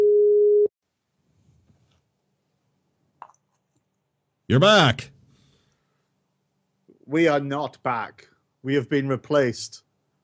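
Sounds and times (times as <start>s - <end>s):
loud steady electronic phone tone: 0.0s - 0.7s
speech: 4.5s - 5.1s, 7.1s - 9.8s.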